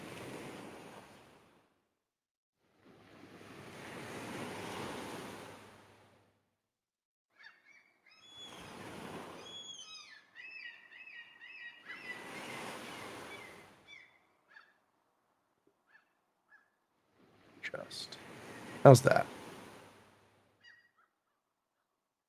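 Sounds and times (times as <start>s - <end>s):
ocean surf rolling in and out: 0.0s - 1.6s, 2.8s - 6.3s, 8.5s - 9.5s, 11.9s - 13.8s, 17.2s - 20.2s
seabirds chirping: 7.4s - 15.0s, 15.8s - 16.8s, 17.5s - 19.8s, 20.6s - 21.9s
speech: 17.7s - 19.4s.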